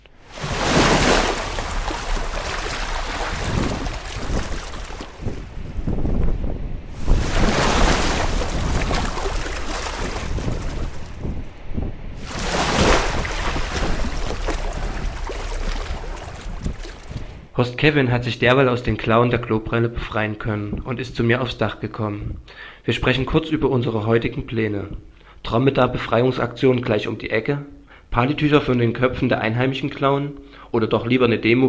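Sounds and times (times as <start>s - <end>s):
sea waves breaking: 0.0s - 17.5s
stormy wind rumbling: 0.0s - 17.6s
speech: 17.6s - 31.6s.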